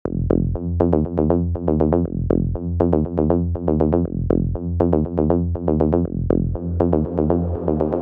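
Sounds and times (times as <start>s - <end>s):
bassline: 0.0s - 7.9s.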